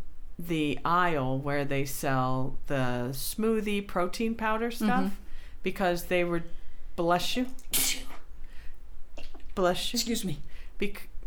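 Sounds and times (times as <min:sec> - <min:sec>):
speech: 0:00.4 - 0:08.0, 0:09.6 - 0:11.1
sneezes: 0:07.6 - 0:08.3.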